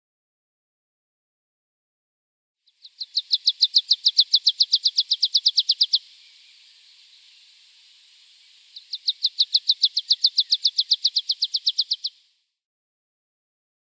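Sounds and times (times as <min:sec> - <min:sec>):
faint hiss: 0:02.8 - 0:12.5
meadow pipit song: 0:02.9 - 0:12.3.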